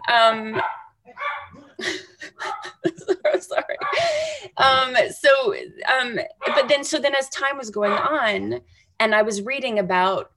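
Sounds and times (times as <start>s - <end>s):
speech: 0.1s - 1.2s, 1.8s - 2.5s, 3.3s - 10.3s
pack of dogs barking: 0.5s - 1.8s, 2.4s - 2.8s, 3.8s - 4.1s, 6.4s - 7.0s, 7.8s - 8.6s
laughter: 1.8s - 4.8s.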